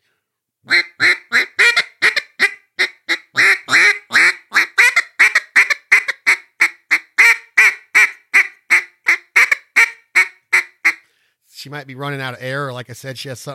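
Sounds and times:
duck call imitating a mallard hen bouncing hen call: 0.7s - 11.0s
speech: 11.6s - 13.5s.

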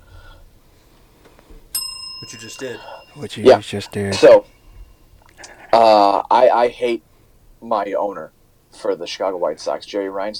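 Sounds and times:
bell ding with clear metallic tone: 1.8s - 4.4s
speech: 2.2s - 4.6s, 5.7s - 10.3s.

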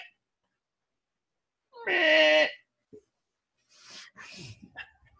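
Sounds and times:
goats bleating: 1.7s - 2.6s.

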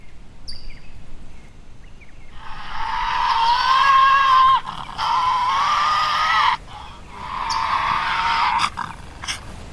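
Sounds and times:
Tasmanian devil crying with harsh rasping screeches: 2.4s - 9.4s.

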